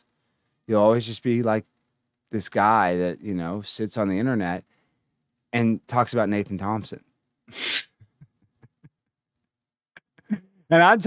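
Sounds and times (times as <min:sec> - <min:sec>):
speech: 0:00.7 - 0:04.8, 0:05.5 - 0:07.9, 0:10.3 - 0:11.0
sneeze: 0:07.5 - 0:08.0.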